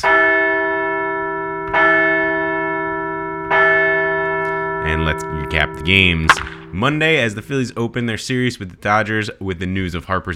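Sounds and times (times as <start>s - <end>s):
large church bell ringing: 0.0s - 8.2s
speech: 5.2s - 10.3s.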